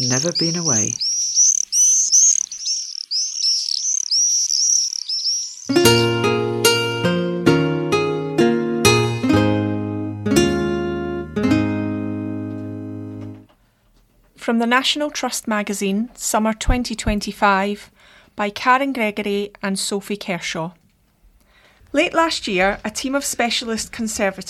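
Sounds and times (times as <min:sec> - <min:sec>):
speech: 0:00.0 - 0:01.1, 0:14.6 - 0:20.8, 0:21.9 - 0:24.4
shrill bird screams in flight overhead: 0:00.0 - 0:05.7
soft piano chords: 0:05.7 - 0:13.4.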